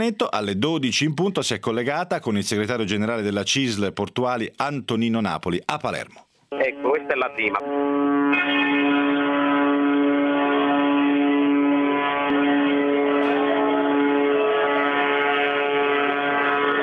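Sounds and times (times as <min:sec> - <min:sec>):
speech: 0:00.0 - 0:08.7
ship sirens in a harbour in Palermo: 0:06.5 - 0:16.8.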